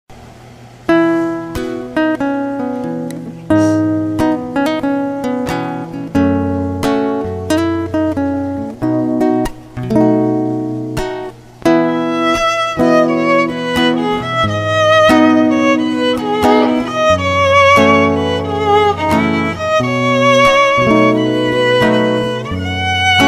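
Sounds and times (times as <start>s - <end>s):
guitar: 0.1s - 23.2s
violin: 11.7s - 23.2s.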